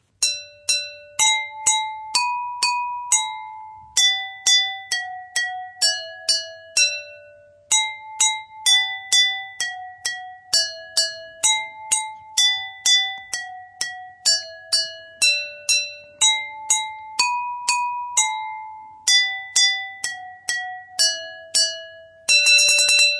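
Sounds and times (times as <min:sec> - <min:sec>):
simple melody struck on tuned drinking glasses: 0:00.0 - 0:23.1.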